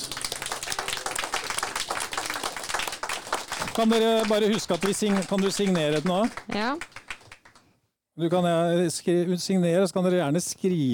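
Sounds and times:
crowd applauding: 0.0 - 7.6
speech: 3.8 - 6.9, 8.2 - 10.9.

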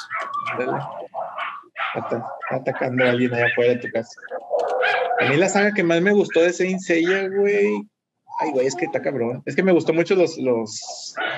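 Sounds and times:
dogs barking and yelping outside a house: 0.0 - 7.7, 11.1 - 11.3
speech: 0.5 - 1.0, 2.0 - 4.4, 5.2 - 11.3.

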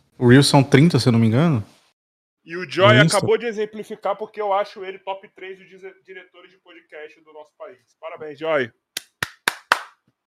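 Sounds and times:
speech: 0.2 - 1.7, 2.4 - 8.8
crisp hand claps: 9.0 - 10.2.

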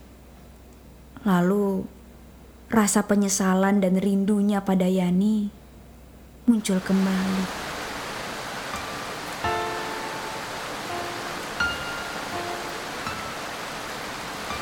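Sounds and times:
speech: 1.2 - 2.0, 2.7 - 5.6, 6.5 - 7.6
faint tonal chirps or squeaks: 6.5 - 14.6
heavy rain: 6.5 - 14.6.

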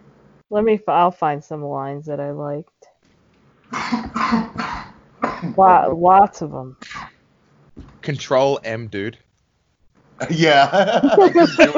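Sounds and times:
speech: 0.5 - 2.8, 5.4 - 6.8, 8.0 - 9.2, 10.2 - 11.7
harsh raspy coughs: 3.7 - 5.6, 6.8 - 7.2
laughter: 10.2 - 11.7.

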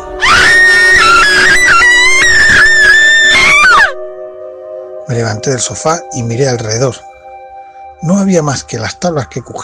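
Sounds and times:
loud scream from downstairs in a house at night: 0.1 - 4.0
speech: 5.1 - 7.1, 8.0 - 9.6.

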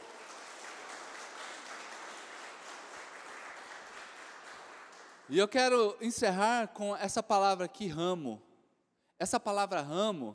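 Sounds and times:
crowd applauding: 0.0 - 5.4
speech: 5.3 - 8.5, 9.2 - 10.3.

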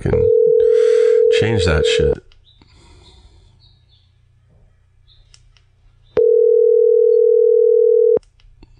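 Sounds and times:
speech: 0.0 - 0.2, 1.4 - 2.3
telephone ringback tone of an unanswered outgoing call: 0.3 - 2.2, 6.2 - 8.2.

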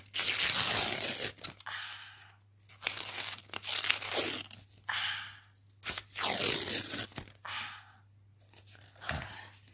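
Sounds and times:
paper tearing: 0.0 - 1.6, 2.8 - 4.6, 5.8 - 7.3
faint steady hum: 0.0 - 9.7.

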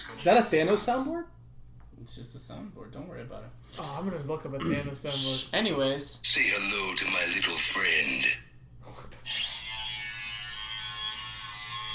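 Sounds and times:
speech: 0.0 - 1.4, 2.0 - 9.5
harsh raspy sawing or drilling noise: 9.3 - 11.9.

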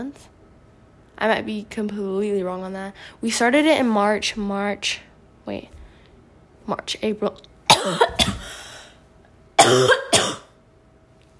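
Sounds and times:
speech: 0.0 - 0.4, 1.2 - 5.8, 6.6 - 8.4, 9.7 - 10.0
person coughing from a dust particle stuck in the throat: 7.7 - 8.7, 9.6 - 10.5.

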